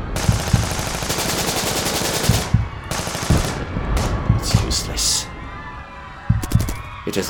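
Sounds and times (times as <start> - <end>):
artillery batteries firing their guns in a rapid barrage: 0.1 - 4.8.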